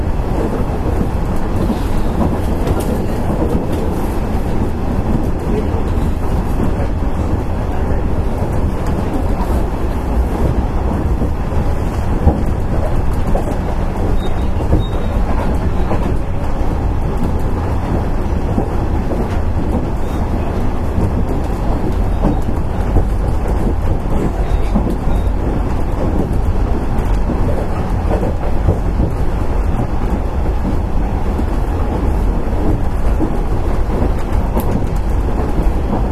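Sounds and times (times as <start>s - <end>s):
electric train running heard from inside: 0.0s - 36.0s
wheels and car body rattling and clattering: 0.0s - 36.0s.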